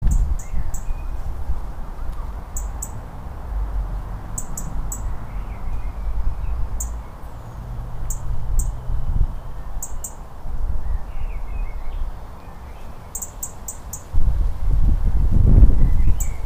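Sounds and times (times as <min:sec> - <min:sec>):
European robin calling: 0:00.0 - 0:01.3, 0:01.9 - 0:03.1, 0:04.3 - 0:14.1, 0:15.8 - 0:16.4
low rumbling background noise: 0:00.0 - 0:16.4.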